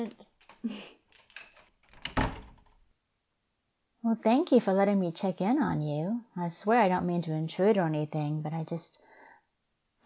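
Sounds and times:
speech: 0.0 - 0.8, 4.1 - 9.1
door latch clicking and rattling: 1.2 - 2.7
door swinging and settling with a thunk: 1.9 - 2.7.

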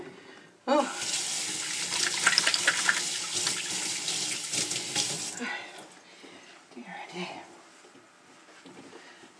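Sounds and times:
water running from a tap as hands are washed at a sink: 0.9 - 5.4.

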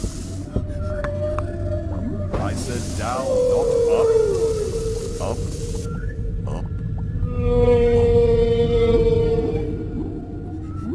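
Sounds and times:
low rumbling background: 0.0 - 10.9
speech: 2.6 - 4.2
long moaning whale call: 2.9 - 6.2, 7.2 - 10.9.

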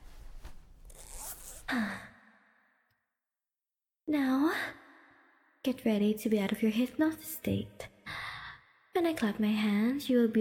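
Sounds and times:
faint rustle of trouser fabric: 0.0 - 1.7
zipper pulled shut on a pair of trousers: 0.8 - 1.7
speech: 1.7 - 2.0, 5.7 - 7.9, 9.0 - 10.3.

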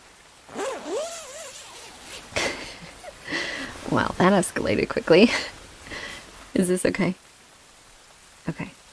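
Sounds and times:
sleeping bag zipper being zipped closed: 0.5 - 3.2
speech: 3.9 - 5.6, 6.6 - 7.2, 8.5 - 8.7.

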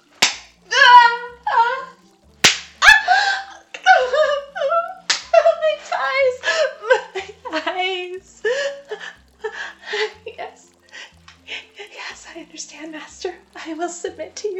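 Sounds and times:
whip lashes cracking across bare skin in a garden: 0.2 - 0.6, 2.4 - 3.0, 5.1 - 5.3
person crying out and whimpering: 0.7 - 2.0, 2.8 - 7.8.

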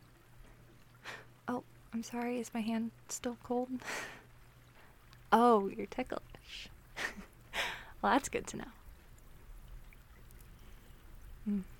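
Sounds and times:
speech: 1.5 - 4.2, 5.3 - 7.3, 8.0 - 8.8, 11.4 - 11.7
rain pouring outside heard from indoors: 3.8 - 11.7.

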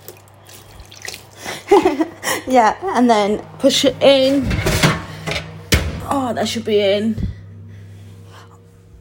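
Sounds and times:
freshly mixed liquid pouring into a container: 0.0 - 1.4
liquid drips and splashes: 0.0 - 1.7
speech: 1.8 - 4.6, 6.2 - 7.3.

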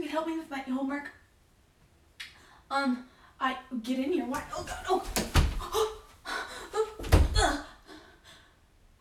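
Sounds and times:
speech: 0.1 - 1.2, 2.7 - 5.3
body slammed against a door: 4.7 - 5.9, 7.0 - 7.6
people panting and gasping: 5.1 - 8.0.

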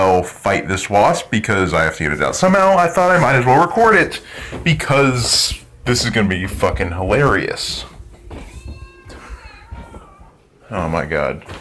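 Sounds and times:
speech: 0.2 - 7.9, 10.7 - 11.6
house cat meowing: 8.3 - 10.5.

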